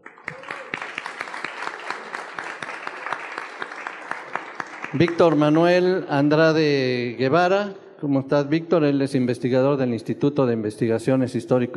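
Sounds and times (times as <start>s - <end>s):
audience applause at a magazine's 30th anniversary event: 0.0s - 5.8s
speech: 4.9s - 11.7s.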